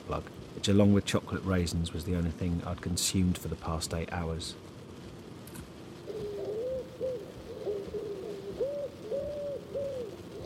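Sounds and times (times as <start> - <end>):
faint hiss: 0.0 - 10.4
speech: 0.1 - 4.7
bird cooing in low rounded notes from cassette recording: 6.0 - 10.4.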